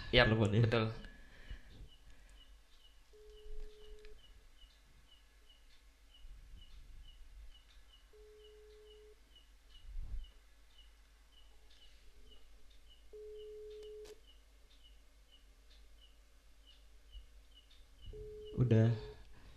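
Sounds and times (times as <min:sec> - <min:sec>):
speech: 0:00.1 - 0:01.1
birds or insects chirping: 0:01.4 - 0:19.5
phone ringback tone beeps: 0:03.1 - 0:04.2, 0:08.1 - 0:09.2, 0:13.1 - 0:14.2, 0:18.1 - 0:19.2.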